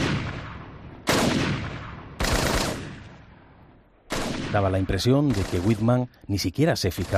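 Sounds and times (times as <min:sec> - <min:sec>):
rifle gunshots: 0:00.0 - 0:03.4, 0:04.1 - 0:06.1, 0:06.9 - 0:07.1
speech: 0:04.5 - 0:07.1.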